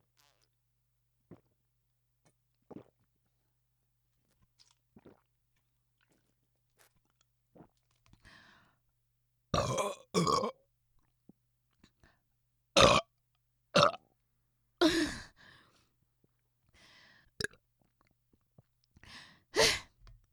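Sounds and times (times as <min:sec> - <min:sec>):
person burping after drinking soda: 0:09.6 - 0:10.6, 0:12.8 - 0:13.0, 0:13.8 - 0:14.0.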